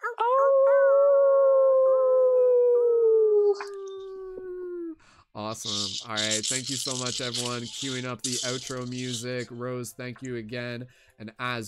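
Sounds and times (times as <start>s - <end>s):
person imitating a wolf howl: 0.0s - 5.0s
speech: 5.4s - 11.6s.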